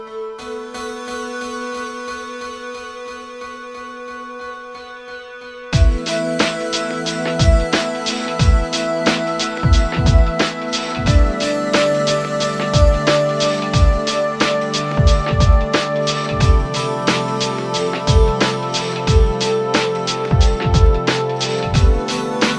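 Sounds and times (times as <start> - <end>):
dance music: 5.8 - 22.5.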